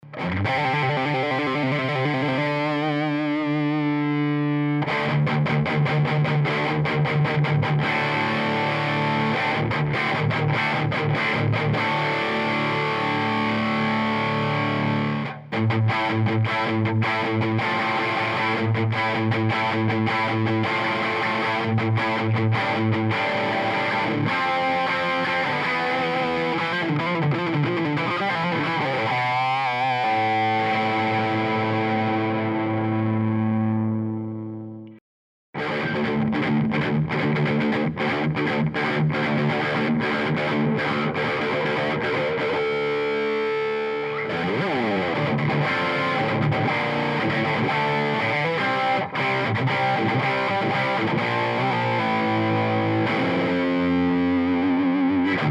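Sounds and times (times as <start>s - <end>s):
guitar through vintage bridge distortion: 0.0s - 35.0s, 35.6s - 55.4s.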